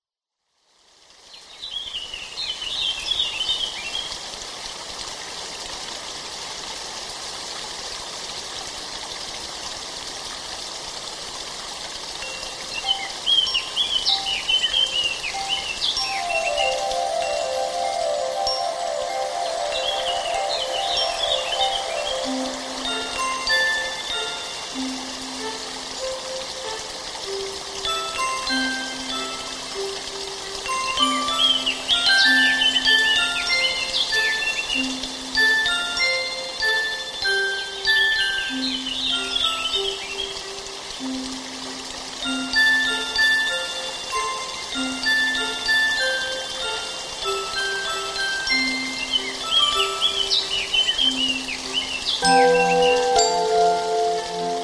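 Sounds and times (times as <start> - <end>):
spring stream flowing: 0.7 - 54.6
birds singing in spring: 12.3 - 26.9, 28.2 - 40.5, 44.2 - 54.6.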